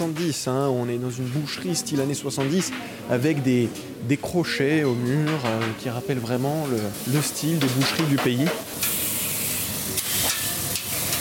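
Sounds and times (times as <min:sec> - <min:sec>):
speech: 0:00.0 - 0:08.9
meat sizzling on a large iron charcoal grill: 0:06.3 - 0:11.1.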